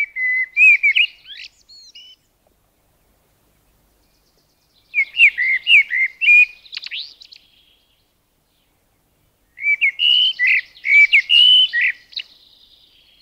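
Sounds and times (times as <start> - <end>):
common blackbird singing warbling phrases: 0.0 - 2.3, 3.5 - 13.2.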